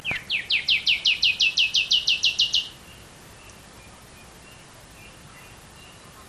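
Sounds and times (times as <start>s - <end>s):
common nightingale song Luscinia megarhynchos: 0.0s - 6.1s.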